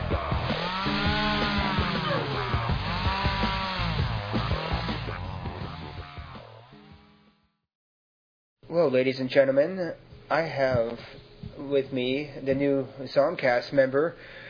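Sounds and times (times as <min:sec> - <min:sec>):
chainsaw engine revving: 0:00.0 - 0:07.4
speech: 0:08.8 - 0:14.4.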